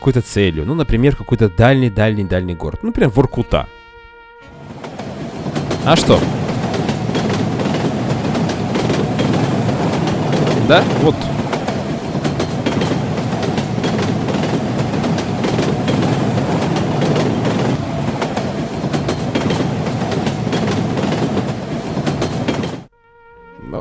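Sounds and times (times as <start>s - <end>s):
speech: 0.0s - 3.8s, 5.8s - 6.4s, 10.7s - 11.3s
train running on rails: 4.5s - 22.9s
train wheels clickety-clack on rails: 4.8s - 22.9s.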